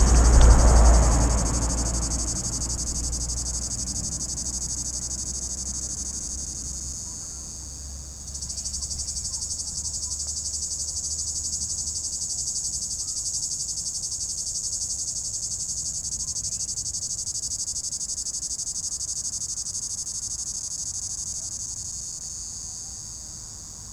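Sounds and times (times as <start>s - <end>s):
low rumbling background noise: 0.0s - 5.1s
cicada droning in an apple tree on a hilltop in 32 degree heat: 0.0s - 23.9s.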